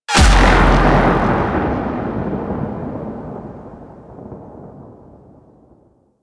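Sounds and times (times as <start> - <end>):
beam fire: 0.1 - 3.9.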